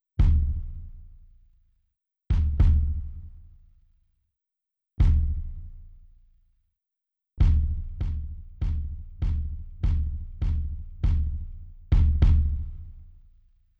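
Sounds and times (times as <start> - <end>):
processed kick drum transient: 0.2 - 1.6, 2.3 - 3.8, 5.0 - 6.3, 7.4 - 13.5.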